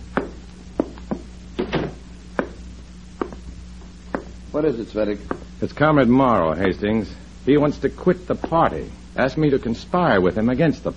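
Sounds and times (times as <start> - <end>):
low steady hum: 0.0 - 10.9
heavy footsteps thudding up a staircase: 0.1 - 2.6, 3.2 - 3.5, 4.1 - 4.4
speech: 4.6 - 10.9.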